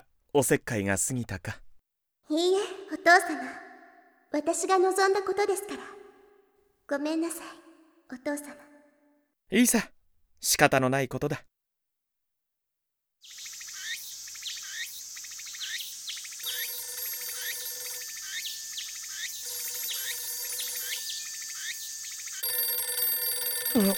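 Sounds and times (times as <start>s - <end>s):
speech: 0.4s - 1.6s, 2.3s - 3.6s, 4.3s - 6.0s, 6.9s - 8.7s, 9.5s - 11.5s, 23.8s - 23.9s
constant high insect-like hum: 13.3s - 23.9s
telephone ringing: 16.4s - 23.9s.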